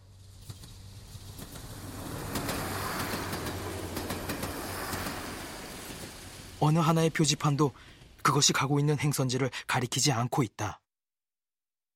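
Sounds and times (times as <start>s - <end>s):
train rattling along the tracks: 0.1s - 8.2s
speech: 6.6s - 10.8s.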